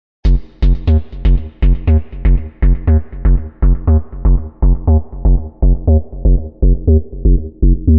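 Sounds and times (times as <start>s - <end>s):
dark bassline at 120 bpm: 0.2s - 7.9s.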